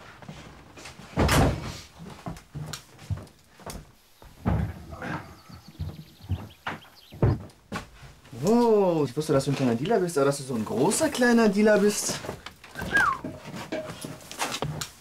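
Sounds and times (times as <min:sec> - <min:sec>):
soft knocks and rattles of a door handle and frame: 0:01.1 - 0:08.0, 0:11.9 - 0:14.9
door pushed shut with a heavy thud: 0:01.2 - 0:01.8, 0:04.4 - 0:06.5
speech: 0:08.4 - 0:12.4.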